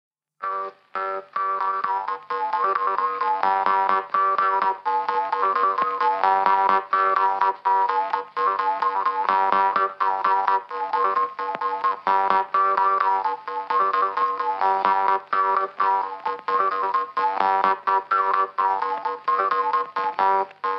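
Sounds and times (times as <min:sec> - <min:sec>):
jaw harp playing a folk tune: 0:00.4 - 0:20.7.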